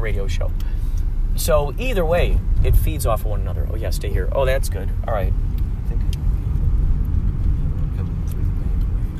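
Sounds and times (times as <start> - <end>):
speech: 0.0 - 0.7, 1.3 - 5.6
car engine rumble heard from inside: 0.0 - 9.1
road noise: 0.0 - 9.1.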